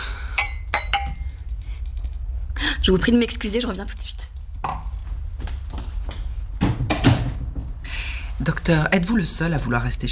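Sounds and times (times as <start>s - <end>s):
low hum: 0.0s - 10.1s
wine glasses clinking in a toast: 0.4s - 1.3s
speech: 2.7s - 4.2s, 8.7s - 10.1s.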